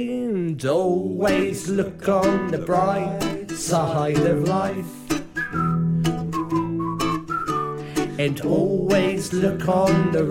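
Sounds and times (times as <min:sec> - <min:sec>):
speech: 0:00.0 - 0:05.7, 0:08.2 - 0:10.2
musical accompaniment with lower instrumental tones: 0:01.3 - 0:10.2
person whistling a cheerful tune: 0:04.7 - 0:09.2.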